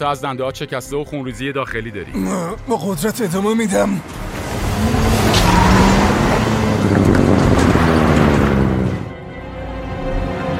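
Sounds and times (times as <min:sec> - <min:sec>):
speech: 0:00.0 - 0:05.0
road noise: 0:03.0 - 0:10.5
car engines rumbling while driving up: 0:03.2 - 0:10.5.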